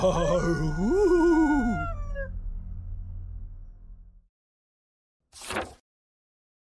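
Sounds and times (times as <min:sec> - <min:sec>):
coyote howling: 0:00.0 - 0:02.4
low rumble: 0:00.0 - 0:04.3.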